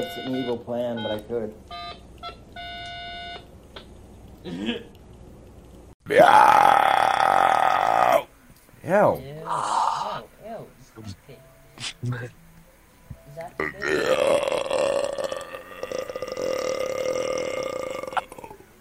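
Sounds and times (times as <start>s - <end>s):
speech: 0.0s - 1.8s, 4.4s - 5.0s, 6.1s - 6.8s, 8.8s - 9.7s, 11.0s - 12.4s, 13.4s - 14.6s
loud belch: 6.1s - 8.2s, 13.6s - 18.6s.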